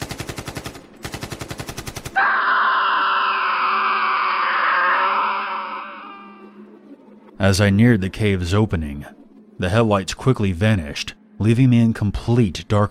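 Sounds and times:
automatic gunfire bursts: 0.0 - 2.2
sustained anguished scream: 2.2 - 6.6
speech: 7.4 - 12.8.

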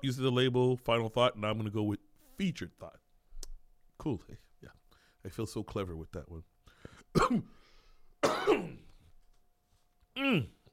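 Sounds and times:
speech: 0.0 - 3.0, 4.0 - 6.5, 7.1 - 7.6, 8.2 - 8.9, 10.2 - 10.6
person clearing throat: 7.1 - 7.6, 8.2 - 9.0, 10.2 - 10.6
person coughing: 7.1 - 7.6, 8.2 - 9.0.

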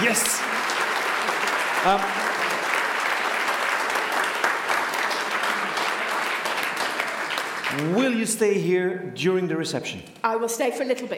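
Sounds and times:
audience crowd applauding: 0.0 - 8.5
speech: 0.1 - 0.4, 1.8 - 2.2, 7.8 - 11.1.

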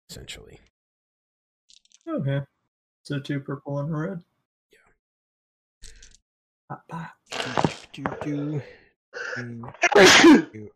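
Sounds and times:
speech: 0.1 - 0.7, 2.0 - 4.3, 6.7 - 10.7
indistinct voices: 6.7 - 10.7
man sneezing: 9.8 - 10.5.

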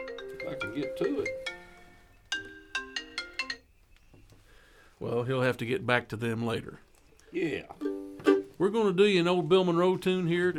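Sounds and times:
mobile phone ringtone of bright chiming notes: 0.0 - 3.6
speech: 0.6 - 1.4, 5.0 - 7.9, 8.6 - 10.5.

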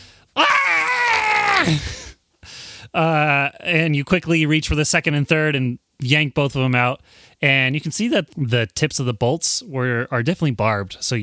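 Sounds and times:
human voice imitating a scream of pain: 0.4 - 2.1
speech: 1.6 - 2.0, 2.9 - 11.2.

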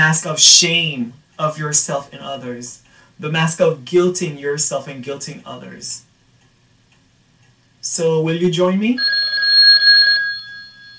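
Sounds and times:
speech: 0.0 - 6.1, 7.8 - 9.1
telephone ringing with trilling bell: 9.0 - 10.9.

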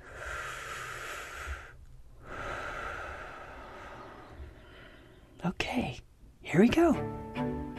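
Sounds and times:
deep breath taken as a relaxation cue: 0.0 - 5.4
speech: 5.4 - 7.5.

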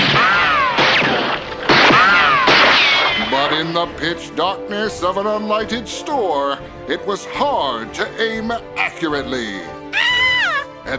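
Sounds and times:
revolver shots in a staged western gunfight: 0.0 - 3.4
whining ricochet-like tones: 0.0 - 3.4
speech: 3.8 - 9.8.

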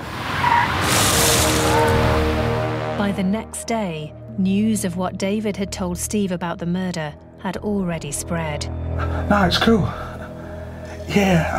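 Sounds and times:
car tires screeching as it skids while being joyridden: 0.0 - 2.6
car engine: 0.0 - 3.0
speech: 3.1 - 10.2, 11.1 - 11.5.

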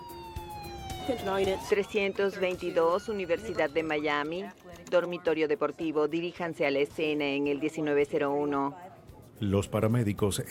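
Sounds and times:
police patrol car siren responding to an emergency at a university: 0.0 - 4.6
speech: 1.1 - 10.4.

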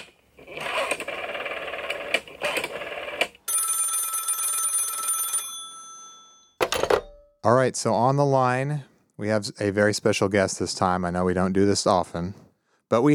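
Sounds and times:
telephone ringing in an electronic trill on an outgoing call: 1.1 - 7.4
speech: 7.4 - 13.1.

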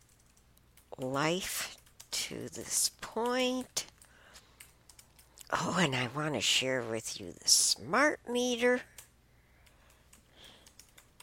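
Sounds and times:
typing notes on a computer keyboard: 0.0 - 5.5, 8.6 - 11.2
speech: 1.0 - 3.9, 5.5 - 8.9.

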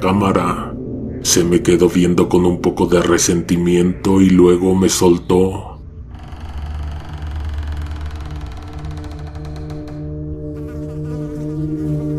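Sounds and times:
speech: 0.0 - 5.7
many flies buzzing: 8.7 - 12.1.

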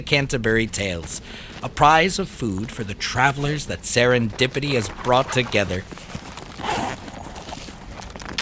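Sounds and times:
speech: 0.0 - 6.8
plastic beef jerky package being unwrapped, crinkling and rustling: 5.6 - 8.4.

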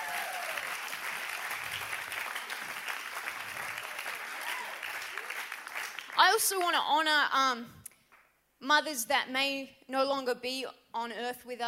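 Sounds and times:
faint cheers: 0.0 - 0.8, 3.6 - 5.4
crowd applauding: 0.0 - 6.4
speech: 6.2 - 7.8, 8.6 - 11.6.

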